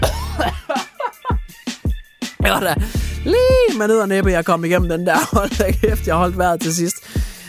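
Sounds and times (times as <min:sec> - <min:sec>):
harsh breathy coughing fit: 0:00.0 - 0:01.4
laughter: 0:00.0 - 0:01.4
speech: 0:02.5 - 0:07.0.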